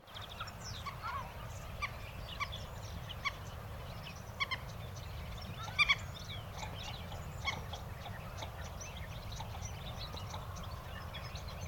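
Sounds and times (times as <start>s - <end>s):
godwit or dowitcher calls: 0.1s - 11.6s.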